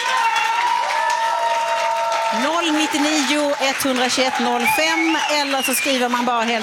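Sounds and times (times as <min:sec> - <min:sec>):
audience clapping: 0:00.0 - 0:06.6
speech: 0:02.4 - 0:06.6.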